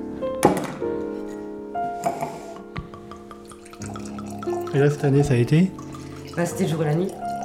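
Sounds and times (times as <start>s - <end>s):
sharp clink of a glass: 2.0s - 7.4s
light white wine pouring into a glass: 2.4s - 7.4s
speech: 4.7s - 5.8s, 6.4s - 7.2s.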